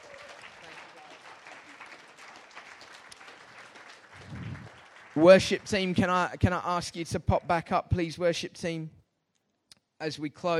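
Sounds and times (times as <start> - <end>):
audience applauding: 0.0 - 6.5
speech: 5.2 - 9.0, 10.0 - 10.5.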